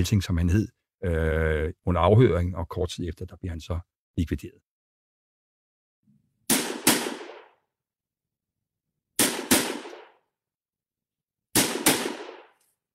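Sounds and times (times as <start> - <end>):
speech: 0.0 - 4.7
pistol shots from a Belgian FN model 1910 pistol in 7.65 calibre: 6.5 - 7.5, 9.2 - 10.2, 11.6 - 12.6.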